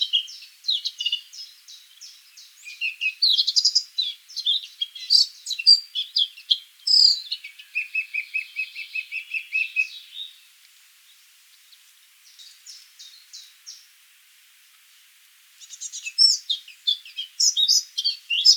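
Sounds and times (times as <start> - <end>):
Eurasian blackcap Sylvia atricapilla singing: 0.0 - 10.3, 15.6 - 18.5.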